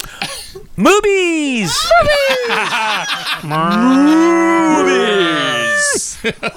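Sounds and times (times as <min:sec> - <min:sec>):
speech: 0:00.8 - 0:06.5
laughter: 0:01.7 - 0:06.5
cow mooing: 0:03.5 - 0:05.0.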